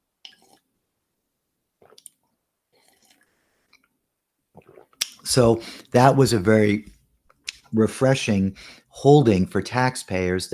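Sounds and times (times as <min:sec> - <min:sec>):
person sipping water: 0:00.2 - 0:00.7, 0:01.8 - 0:03.9, 0:04.5 - 0:05.9
person swallowing water: 0:04.5 - 0:05.3
speech: 0:05.3 - 0:07.0, 0:07.7 - 0:10.5.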